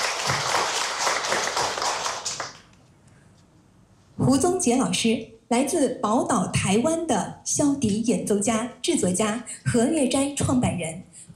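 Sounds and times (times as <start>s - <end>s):
audience applause welcoming a guest at an event: 0.0s - 2.7s
speech: 4.2s - 11.3s.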